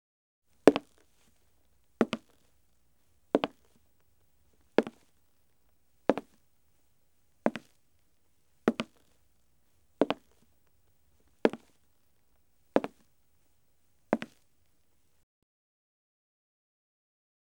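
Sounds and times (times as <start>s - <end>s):
slow footsteps on wood: 0.6s - 6.4s, 7.4s - 7.8s, 8.6s - 11.9s, 14.1s - 14.8s.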